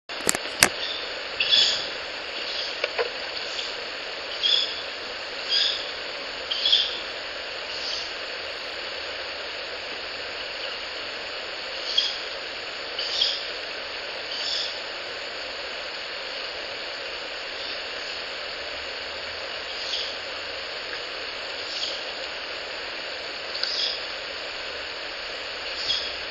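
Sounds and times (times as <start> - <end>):
high whine: 0.1 - 26.2
steady background hiss: 0.1 - 26.2
Ural Owl chick giving short raspy hissing calls: 0.8 - 2.8, 3.4 - 8.4, 11.7 - 13.6, 14.3 - 14.9, 17.5 - 18.1, 19.6 - 20.2, 21.5 - 22.1, 23.6 - 24.1, 25.7 - 26.2.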